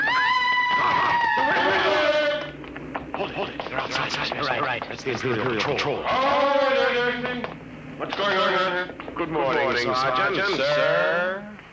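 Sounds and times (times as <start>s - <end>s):
person screaming: 0.0s - 2.5s
laughter: 1.2s - 5.8s
speech: 3.9s - 11.5s.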